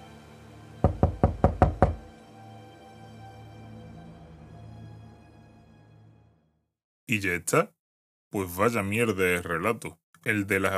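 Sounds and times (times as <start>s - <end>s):
insistent knocking on a bedroom door: 0.8s - 2.1s
speech: 7.1s - 10.7s.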